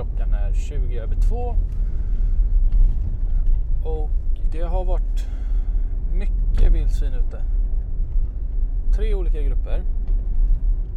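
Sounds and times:
car road and engine noise droning in the cabin: 0.0 - 10.9
speech: 0.6 - 1.9, 3.8 - 5.4, 6.1 - 7.6, 8.9 - 10.0.

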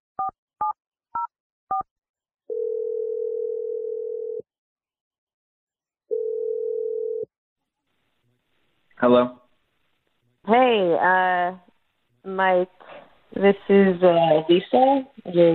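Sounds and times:
telephone long steady ringing tones: 2.5 - 4.4, 6.1 - 7.3
speech: 9.0 - 9.4, 10.5 - 11.6, 12.2 - 15.5.

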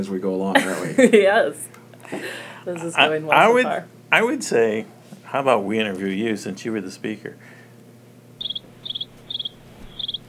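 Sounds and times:
speech: 0.0 - 7.6
quiet hum: 0.0 - 10.2
cricket chirping: 8.4 - 10.2.

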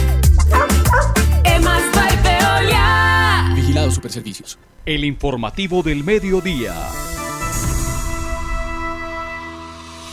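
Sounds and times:
low music: 0.0 - 10.1
dog barking and yipping: 0.4 - 1.4
speech: 4.0 - 7.1.

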